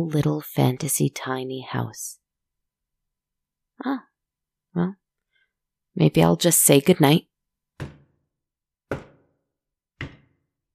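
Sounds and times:
speech: 0.0s - 2.2s, 3.8s - 4.1s, 4.7s - 5.0s, 6.0s - 8.0s
knocks on a door: 7.8s - 8.2s, 8.9s - 9.4s, 10.0s - 10.5s.

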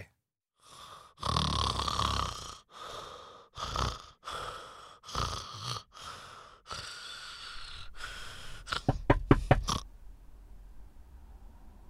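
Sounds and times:
man snoring loudly: 0.6s - 9.9s.

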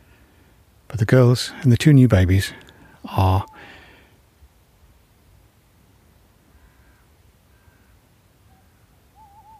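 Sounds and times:
steady hissing background: 0.0s - 9.5s
speech: 1.0s - 3.7s
faint owl hooting at the far end of a valley with farms and a lake: 6.5s - 9.5s.

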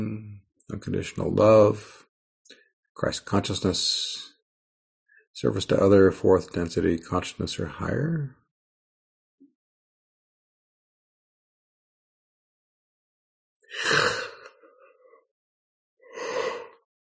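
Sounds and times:
speech: 0.0s - 4.3s, 5.4s - 8.4s
drawn-out breathy yawn with voiced groan: 13.7s - 15.2s, 16.1s - 16.8s.

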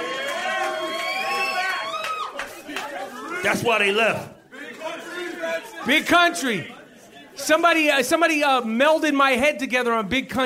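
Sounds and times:
large live crowd cheering and shouting: 0.0s - 6.6s
speech: 3.4s - 4.4s, 5.8s - 6.8s, 7.4s - 10.4s.

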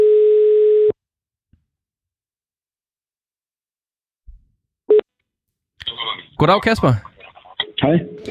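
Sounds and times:
telephone ringing tone: 0.0s - 1.0s
speech: 6.4s - 7.1s, 7.8s - 8.3s.

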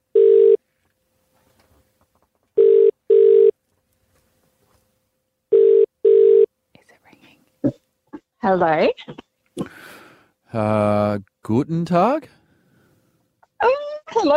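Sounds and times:
telephone ringing tone on an outgoing call: 0.1s - 0.6s, 2.6s - 3.6s, 5.5s - 6.5s
faint rustling: 0.7s - 2.6s, 3.6s - 5.1s
speech: 8.4s - 9.2s, 10.5s - 12.4s.

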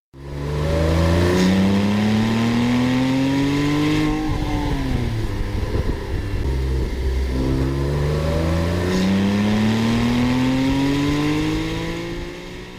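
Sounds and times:
naturally aspirated Porsche 911 engine revving: 0.2s - 12.7s.

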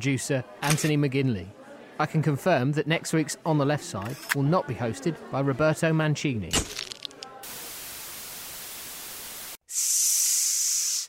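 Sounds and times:
speech: 0.0s - 6.8s
person hissing: 9.6s - 11.0s.

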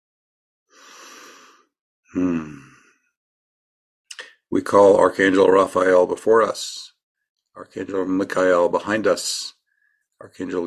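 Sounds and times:
speech: 2.1s - 2.6s, 4.6s - 6.9s, 7.6s - 9.6s, 10.2s - 10.6s
person yawning: 2.1s - 3.0s.

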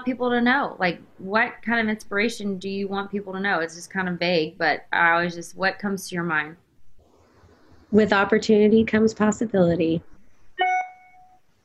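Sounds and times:
speech: 0.0s - 6.6s, 7.9s - 10.1s
electronic notification chime from a phone or computer: 10.6s - 11.4s.

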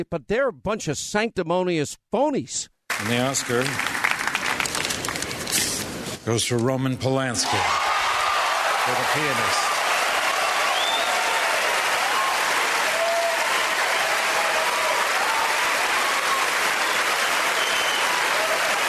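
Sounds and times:
speech: 0.0s - 4.0s, 6.3s - 7.8s, 8.8s - 9.7s
large crowd applauding at an awards ceremony: 2.9s - 5.6s, 7.5s - 18.8s
cheers: 7.4s - 18.8s
faint whistles: 10.7s - 11.1s, 16.9s - 18.2s.

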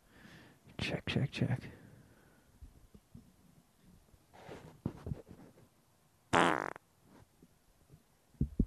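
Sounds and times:
speech: 0.9s - 1.8s
loud buzzy fart into a microphone: 6.4s - 6.8s.

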